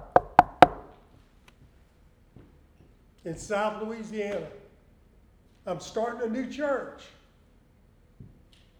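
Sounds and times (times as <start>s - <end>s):
knocking on a door: 0.0s - 0.8s
speech: 3.2s - 4.6s, 5.6s - 7.2s.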